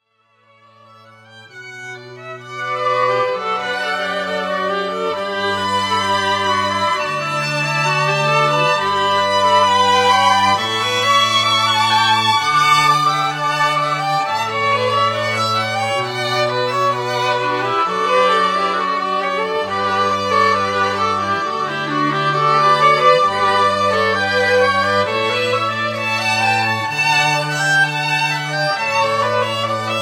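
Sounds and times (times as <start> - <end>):
classical ensemble playing: 0.5 - 30.0.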